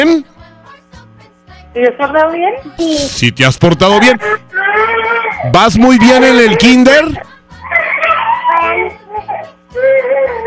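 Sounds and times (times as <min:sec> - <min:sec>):
steady low electrical hum: 0:00.0 - 0:10.4
speech: 0:01.8 - 0:04.4, 0:05.4 - 0:07.3
child wailing and crying: 0:04.5 - 0:06.8, 0:07.6 - 0:10.4.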